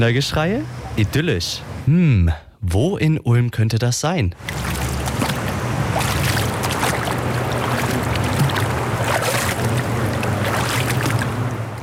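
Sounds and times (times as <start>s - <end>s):
speech: 0.0s - 4.8s
water flowing into a Kneipp wading basin in Ulm: 4.4s - 11.5s.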